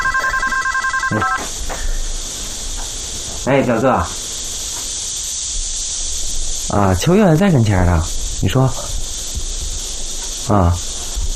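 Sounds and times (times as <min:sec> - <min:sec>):
phone ringing with an electronic warble: 0:00.0 - 0:01.5
speech: 0:01.1 - 0:01.6, 0:03.4 - 0:04.3, 0:06.7 - 0:08.9, 0:10.5 - 0:10.9
soft hiss: 0:01.3 - 0:11.3.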